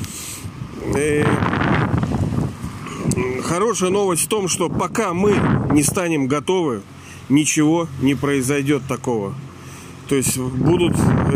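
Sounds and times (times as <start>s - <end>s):
loud steady wind buffeting the microphone: 0.0s - 6.1s, 10.2s - 11.3s
speech: 0.8s - 1.6s, 3.2s - 9.5s, 10.1s - 11.3s.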